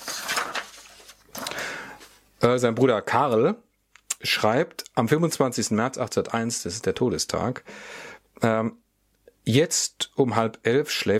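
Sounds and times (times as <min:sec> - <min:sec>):
pages being flipped: 0:00.0 - 0:01.6
speech: 0:02.4 - 0:08.8, 0:09.4 - 0:11.1.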